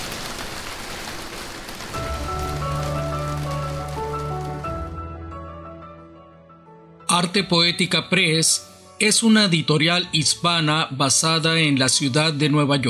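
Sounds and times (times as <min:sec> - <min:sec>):
heavy rain pouring down outside: 0:00.0 - 0:05.1
speech: 0:07.2 - 0:12.8.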